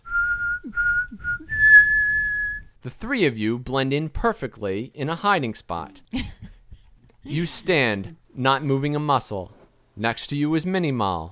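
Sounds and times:
whistle given as a command to yaks: 0.0 - 2.7
speech: 2.8 - 6.4, 7.3 - 11.3.

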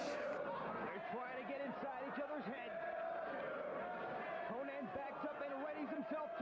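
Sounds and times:
large arena crowd at a wrestling match chanting in unison: 0.0 - 6.4.

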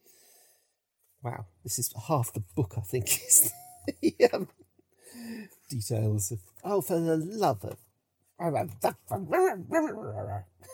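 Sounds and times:
speech: 1.2 - 4.6, 5.2 - 7.8, 8.4 - 10.5
person imitating yappy whining dog barks: 9.2 - 10.7.

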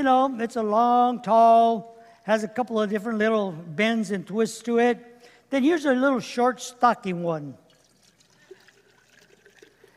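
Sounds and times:
speech: 0.0 - 7.6
water trickling into a container: 7.6 - 9.9.

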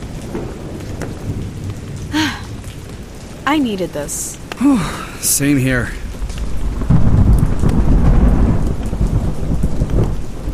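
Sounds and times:
heavy rain: 0.0 - 10.5
rolling thunder rumble: 0.0 - 10.5
speech: 3.5 - 6.0.

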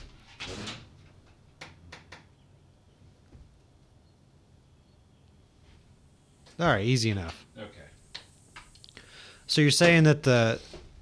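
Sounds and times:
pub door opening to let a dog in: 0.0 - 2.3
speech: 6.6 - 7.8, 9.5 - 10.8.

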